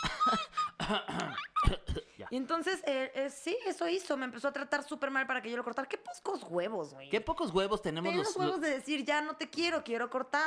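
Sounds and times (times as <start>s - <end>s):
coughing: 0.0s - 2.3s
speech: 0.9s - 10.4s.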